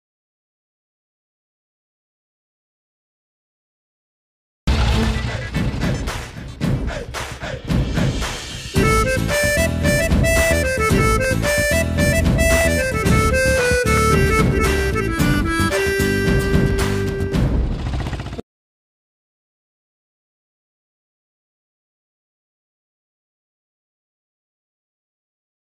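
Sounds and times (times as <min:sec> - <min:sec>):
drums in background music ringtone: 0:04.7 - 0:18.4
flute in background music ringtone: 0:08.7 - 0:17.4.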